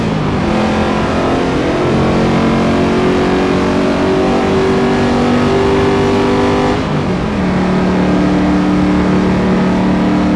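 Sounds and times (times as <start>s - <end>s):
Crown Vic car cruising: 0.0s - 10.3s.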